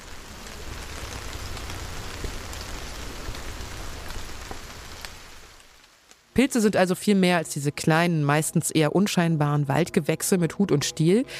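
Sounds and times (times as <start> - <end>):
rain pattering down over woods: 0.0 - 10.4
speech: 6.4 - 11.3.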